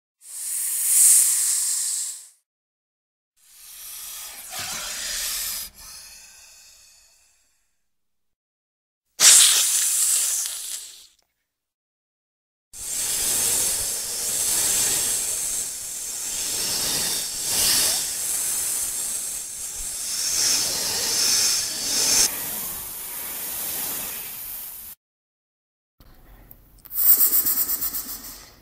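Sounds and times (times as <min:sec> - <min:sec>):
boa snake hissing: 0:00.2 - 0:02.4, 0:03.4 - 0:07.6, 0:09.2 - 0:11.2, 0:12.8 - 0:25.0, 0:26.9 - 0:28.6.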